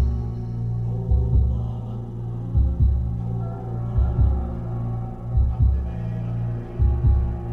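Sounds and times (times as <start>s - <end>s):
constant low droning hum: 0.0s - 7.5s
slow heartbeat: 1.0s - 1.9s, 2.5s - 6.0s, 6.7s - 7.5s.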